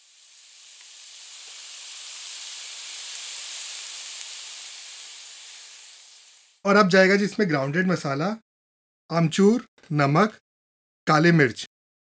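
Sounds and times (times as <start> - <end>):
potatoes and boiled peas with turmeric, green chili and asafoetida sizzling in a pan: 0.0 - 6.7
speech: 6.6 - 8.4, 9.1 - 10.4, 11.1 - 11.7.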